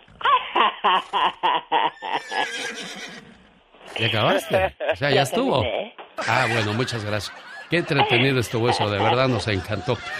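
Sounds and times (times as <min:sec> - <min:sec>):
laughter: 0:00.2 - 0:02.6, 0:06.2 - 0:10.1
speech: 0:00.8 - 0:10.1
person imitating a horse's whinny: 0:01.9 - 0:03.1.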